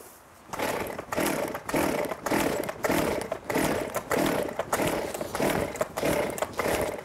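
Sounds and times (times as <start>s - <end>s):
chainsaw cranked without catching: 0.5s - 7.0s.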